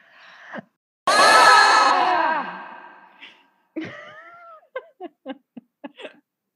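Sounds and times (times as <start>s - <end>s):
people screaming together: 1.1s - 3.2s.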